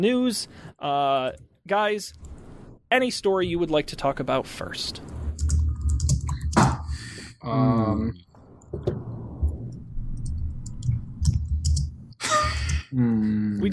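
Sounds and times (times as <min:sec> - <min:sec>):
speech: 0:00.0 - 0:02.3, 0:02.9 - 0:05.2, 0:07.4 - 0:09.0, 0:12.9 - 0:13.7
typing on a computer keyboard: 0:05.4 - 0:06.6, 0:10.2 - 0:11.9
breathy vocal sounds: 0:06.9 - 0:08.2, 0:12.2 - 0:13.7.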